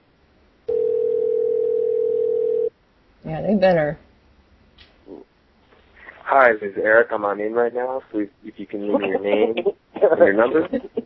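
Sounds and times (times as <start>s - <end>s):
telephone ringback tone while calling: 0.7s - 2.7s
speech: 3.3s - 4.0s, 6.3s - 11.0s
laughter: 8.7s - 11.0s.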